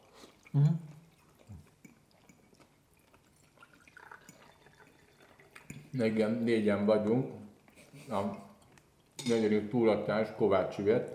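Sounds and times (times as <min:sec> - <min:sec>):
speech: 0:00.5 - 0:00.9, 0:06.0 - 0:07.4, 0:08.1 - 0:08.5, 0:09.2 - 0:11.1
wine drips and trickles: 0:03.4 - 0:06.1
red wine glugging and splashing: 0:03.4 - 0:06.4.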